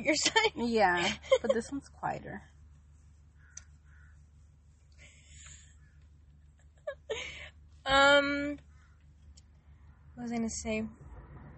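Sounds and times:
speech: 0.0s - 2.5s, 7.1s - 8.7s, 10.2s - 11.0s
low steady hum: 0.0s - 11.5s
crow cawing: 3.4s - 4.2s.

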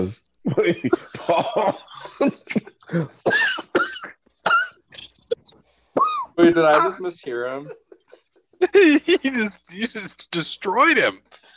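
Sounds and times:
speech: 0.0s - 3.4s, 6.6s - 7.9s, 8.7s - 11.3s
man in a fit of laughter: 0.5s - 3.2s, 6.4s - 10.0s
man coughing hard in a fit of laughter: 0.6s - 4.8s.

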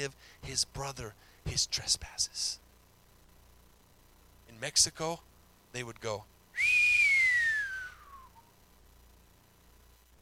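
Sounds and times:
speech: 0.0s - 2.6s, 4.5s - 6.8s
soft breathy hiss: 0.0s - 10.1s
person whistling a long downward-sliding note: 6.6s - 8.5s.

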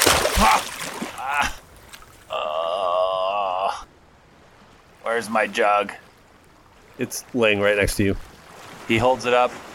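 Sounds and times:
water splashing: 0.0s - 2.8s, 4.3s - 9.7s
wavering moan-like vocal sound: 2.3s - 3.8s
speech: 5.2s - 6.0s, 7.0s - 8.3s, 8.9s - 9.7s.

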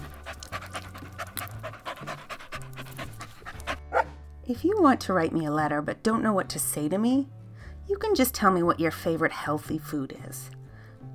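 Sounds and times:
golden Labrador retriever panting: 0.0s - 4.2s
speech: 4.5s - 10.5s.

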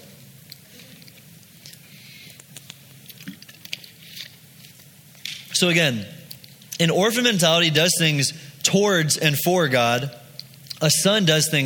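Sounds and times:
person drinking water: 0.5s - 4.9s
speech: 5.6s - 6.2s, 6.8s - 10.2s, 10.8s - 11.6s.

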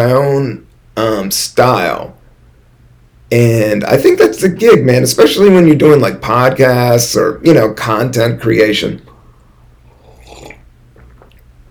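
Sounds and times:
speech: 0.0s - 2.2s, 3.3s - 9.1s
faint steady low hum: 0.0s - 11.7s
person slurping hot coffee: 9.9s - 11.4s
wet mouth sounds: 9.9s - 11.6s.

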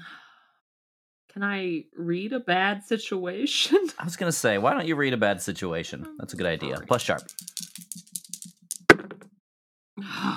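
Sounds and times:
speech: 1.4s - 7.6s
dice rattling and clattering on a hard surface: 6.4s - 9.3s.

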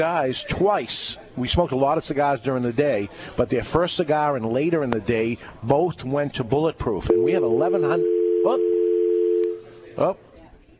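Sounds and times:
speech: 0.0s - 8.7s, 10.0s - 10.2s
telephone dial tone after a dropped cell phone call: 7.1s - 9.6s.

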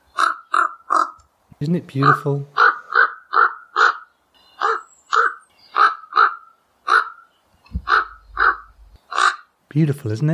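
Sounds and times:
raven giving harsh squawky croaks: 0.0s - 1.2s, 1.9s - 9.6s
speech: 1.6s - 2.6s, 9.8s - 10.3s.

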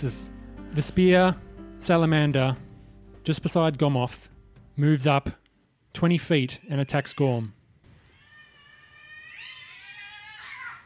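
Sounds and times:
speech: 0.0s - 2.6s, 3.2s - 5.4s, 6.0s - 7.6s
cats yowling and screaming outdoors: 8.0s - 10.8s.

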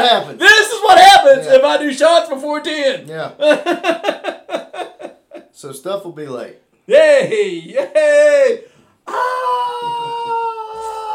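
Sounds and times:
speech: 0.0s - 4.3s, 5.6s - 10.4s
laughter: 3.4s - 5.5s
person letting out a long strained yell of pain: 8.0s - 11.1s.

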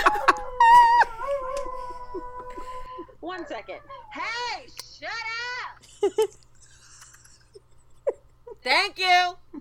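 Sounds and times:
dog howling at a passing fire truck siren: 0.0s - 4.6s
speech: 3.5s - 6.4s, 8.6s - 9.4s.

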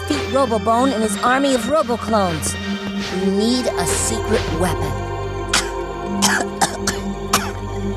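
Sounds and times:
low humming drone: 0.0s - 7.9s
speech: 0.3s - 5.1s, 6.1s - 7.0s
cartoon character coughing from chalk dust: 5.5s - 7.6s.

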